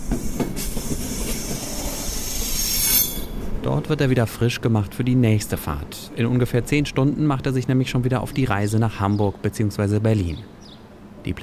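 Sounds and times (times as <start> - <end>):
train wheel clanks and knocks: 0.0 - 1.9
train rumbling along track while shunted onto a siding: 0.0 - 7.0
speech: 3.6 - 10.6, 11.2 - 11.4.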